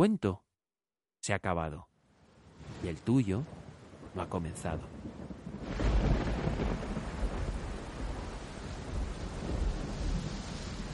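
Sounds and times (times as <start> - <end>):
speech: 0.0 - 0.4, 1.2 - 1.9, 2.7 - 3.6, 4.2 - 5.8
steady rain: 2.1 - 10.9
deep rumble of thunder: 2.6 - 10.9.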